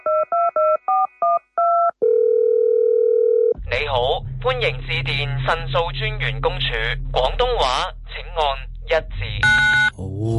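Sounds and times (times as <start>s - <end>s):
telephone dial tone: 0.1s - 3.6s
speech: 3.9s - 10.3s.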